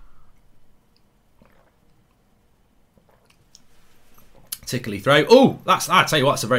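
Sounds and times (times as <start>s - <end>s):
person sipping water from a mug: 1.3s - 2.2s, 2.9s - 4.6s
speech: 4.7s - 6.5s.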